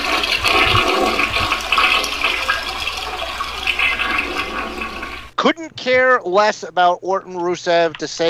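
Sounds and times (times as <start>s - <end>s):
toilet flushing: 0.0s - 5.4s
speech: 5.4s - 8.2s.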